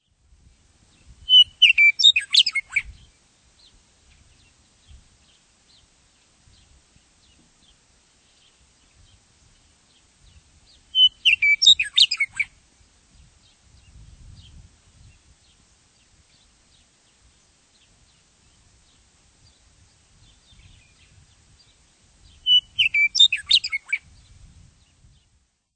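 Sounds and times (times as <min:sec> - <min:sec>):
Western Meadowlark singing: 0:00.9 - 0:25.4.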